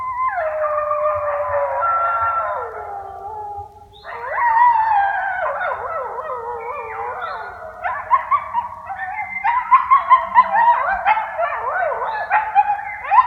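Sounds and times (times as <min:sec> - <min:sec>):
coyote chorus howling: 0:00.0 - 0:13.2.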